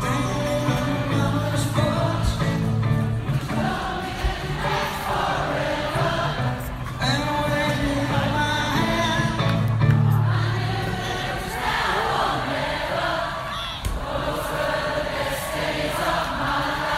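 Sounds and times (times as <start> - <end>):
loud live concert music: 0.0 - 11.5
large concert crowd in Perth singing along: 0.0 - 16.9.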